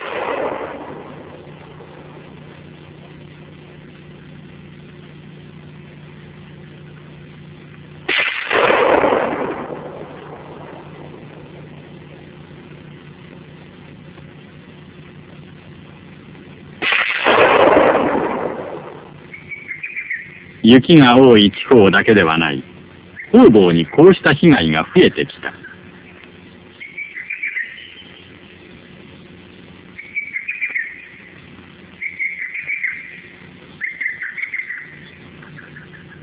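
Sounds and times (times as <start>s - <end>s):
carbide cannon blasts scaring away hares: 0.0s - 2.5s, 8.1s - 12.1s, 16.8s - 19.3s
steady low hum outdoors: 0.0s - 36.2s
speech: 20.7s - 22.7s, 23.3s - 25.6s.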